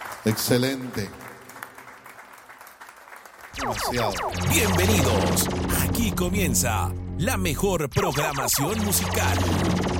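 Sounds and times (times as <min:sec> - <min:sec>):
crowd applauding: 0:00.0 - 0:03.6
speech: 0:00.2 - 0:01.3, 0:03.6 - 0:09.9.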